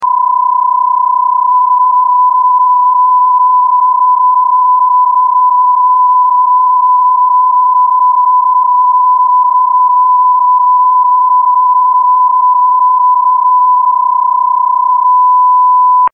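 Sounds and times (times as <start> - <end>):
PSK31 digital mode radio signal: 0.0 - 16.1.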